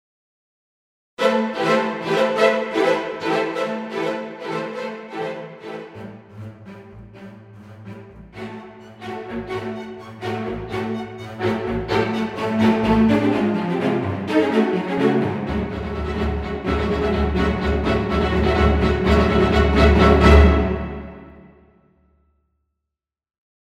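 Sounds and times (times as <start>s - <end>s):
fast spiccato string lines: 1.2s - 21.6s.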